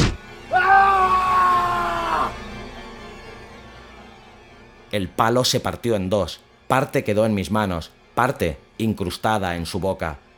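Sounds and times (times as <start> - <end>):
man screaming: 0.5 - 2.4
speech: 4.9 - 10.2.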